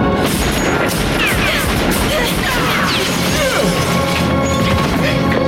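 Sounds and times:
gunfire exchange with sharp cracks and booms: 0.2s - 5.3s
shuttered window breaking from a stray bullet: 0.2s - 5.3s.

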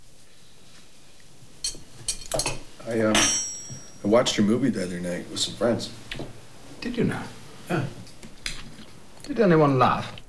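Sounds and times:
clinks and clatters of cutlery and dishes: 1.6s - 4.4s
speech: 2.4s - 3.4s, 4.0s - 8.0s, 9.3s - 10.2s.

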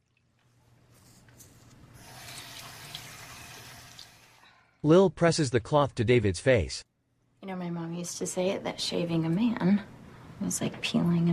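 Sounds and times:
running tap water pouring into a sink while a towel is wetted: 2.0s - 4.4s
speech: 4.8s - 11.3s.

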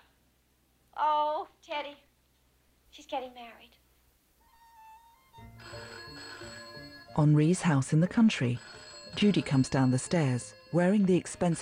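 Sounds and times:
speech: 1.0s - 2.1s, 2.9s - 3.8s, 5.6s - 6.4s, 7.2s - 11.6s
soft tones: 4.4s - 11.6s
telephone bell ringing in a country house: 5.4s - 11.6s.

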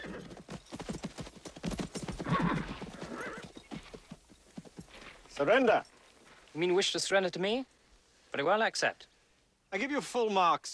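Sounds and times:
horse neighing: 0.0s - 0.4s, 2.2s - 3.9s
horses with riders galloping into a forest clearing: 0.0s - 5.9s
speech: 5.4s - 5.9s, 6.6s - 7.7s, 8.3s - 9.1s, 9.7s - 10.7s.

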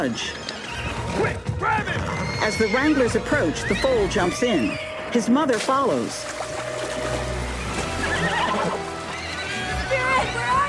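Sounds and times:
speech: 0.0s - 0.5s, 1.2s - 6.4s
horse whinnying on a ship: 0.0s - 5.5s, 7.6s - 10.6s
low rumbling of moving water: 0.0s - 10.6s.

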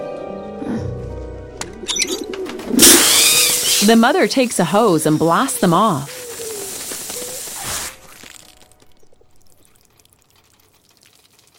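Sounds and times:
pigeon wings fluttering while landing on a flat roof: 1.6s - 11.5s
pigeons cooing on a flat roof: 1.8s - 8.2s
speech: 3.8s - 6.2s.

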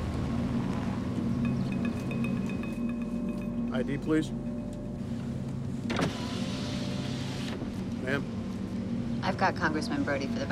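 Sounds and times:
steady low car engine hum: 0.0s - 10.4s
speech: 3.8s - 4.5s, 8.1s - 8.3s, 9.3s - 10.4s
electric whine of a car power window closing at an armed military checkpoint: 5.9s - 7.7s.

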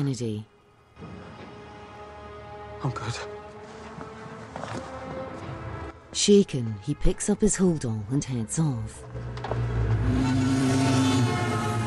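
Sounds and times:
speech: 0.0s - 1.2s, 2.8s - 3.4s, 6.1s - 9.6s
busy city street traffic: 9.0s - 11.8s.

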